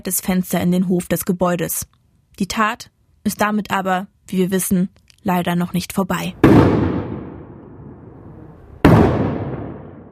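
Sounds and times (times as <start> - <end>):
speech: 0.0 - 6.8
gunshots with long decay: 6.4 - 8.0, 8.8 - 10.1.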